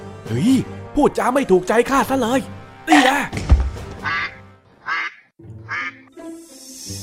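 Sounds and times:
speech: 0:00.3 - 0:03.4
duck quacking: 0:04.0 - 0:06.1.

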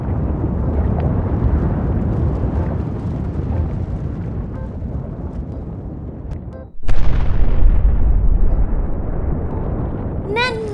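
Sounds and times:
volcanic eruption blast with deep rumbling roar: 0:00.0 - 0:10.7
brief tonal voice-like sound: 0:10.3 - 0:10.7.

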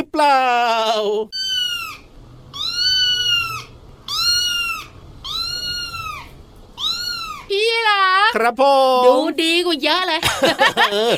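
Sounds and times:
speech: 0:00.2 - 0:01.4, 0:08.3 - 0:11.1
real cat meowing loudly: 0:01.4 - 0:07.5
laughter: 0:10.2 - 0:11.1.

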